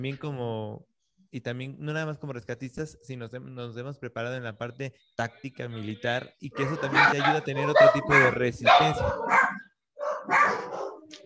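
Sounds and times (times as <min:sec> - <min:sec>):
speech: 0:00.0 - 0:09.4
dog barking loudly in a house full of dogs: 0:06.6 - 0:11.1.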